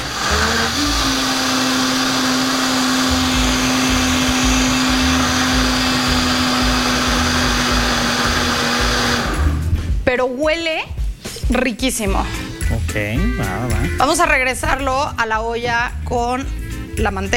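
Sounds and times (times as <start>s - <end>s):
blender pureeing thick soup with added broth: 0.0s - 9.7s
speech: 10.4s - 17.3s.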